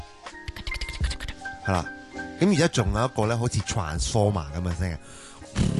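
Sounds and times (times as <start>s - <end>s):
voice mimicking keyboard typing with mouth clicks and taps: 0.4s - 1.4s
speech: 1.7s - 5.7s.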